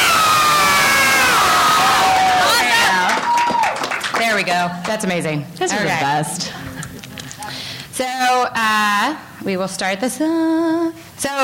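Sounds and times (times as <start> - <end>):
live crowd screaming and cheering: 0.0 - 3.9
speech: 4.4 - 6.7, 8.0 - 11.4.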